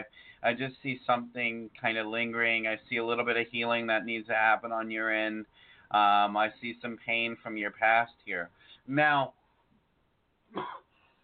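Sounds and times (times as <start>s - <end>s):
speech: 0.0s - 9.4s, 10.5s - 10.8s
person coughing: 10.5s - 11.0s.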